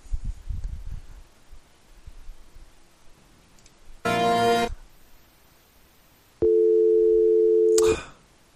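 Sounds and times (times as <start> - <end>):
click ending the dial tone: 3.6 - 3.8
telephone dial tone: 6.4 - 7.8.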